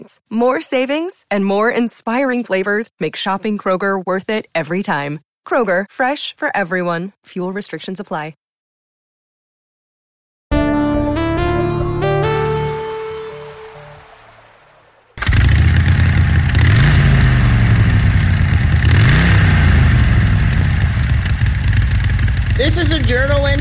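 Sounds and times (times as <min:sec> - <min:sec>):
speech: 0:00.1 - 0:08.4, 0:22.6 - 0:23.6
soft piano-like notes: 0:10.5 - 0:14.4
loud motorcycle engine revving over a rumbling idle: 0:15.2 - 0:23.6.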